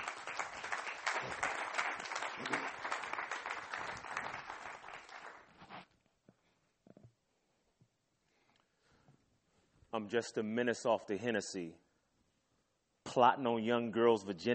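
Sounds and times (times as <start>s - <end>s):
crowd applauding: 0.0s - 5.8s
speech: 10.0s - 11.8s, 13.2s - 14.5s.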